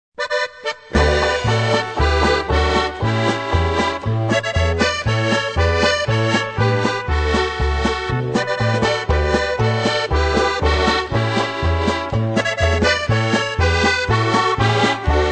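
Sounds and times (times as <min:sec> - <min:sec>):
button box accordion music: 0:00.2 - 0:15.2.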